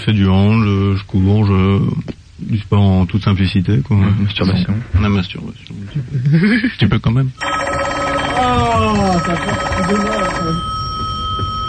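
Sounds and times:
speech: 0:00.0 - 0:10.8
telephone ringing on the direct line during a live radio show: 0:07.4 - 0:11.6.

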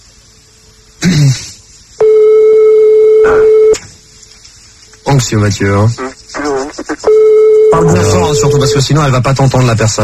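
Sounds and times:
telephone line ringback tone during a call: 0:02.0 - 0:03.8, 0:07.1 - 0:08.9
speech: 0:05.2 - 0:06.1, 0:07.8 - 0:10.0.

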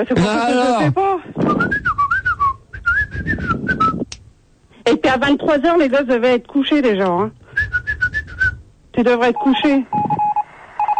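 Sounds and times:
speech: 0:00.0 - 0:01.9, 0:04.8 - 0:07.4, 0:09.0 - 0:10.2
person whistling a wavering warbling tune: 0:01.5 - 0:04.0, 0:07.6 - 0:08.6.

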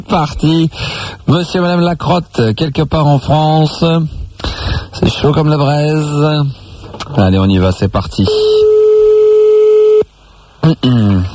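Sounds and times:
speech: 0:00.0 - 0:04.2, 0:05.0 - 0:08.7, 0:10.7 - 0:11.3
voice answering a telephone call: 0:08.2 - 0:10.0
telephone ringback tone on an outgoing call: 0:08.3 - 0:10.0.

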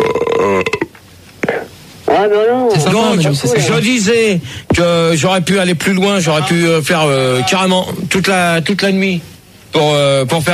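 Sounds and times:
person burping: 0:00.0 - 0:00.9
speech: 0:02.2 - 0:10.5.

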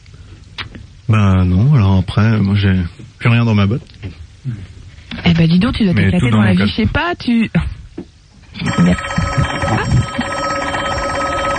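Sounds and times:
speech: 0:01.1 - 0:04.7, 0:05.4 - 0:07.7, 0:08.6 - 0:10.0
telephone ringing on a direct line with an electronic bell trill: 0:08.6 - 0:11.5.

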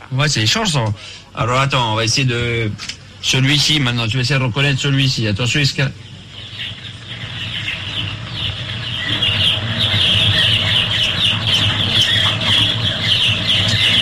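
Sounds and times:
speech: 0:00.1 - 0:06.1
many chicks cheeping inside a henhouse: 0:05.6 - 0:14.0.

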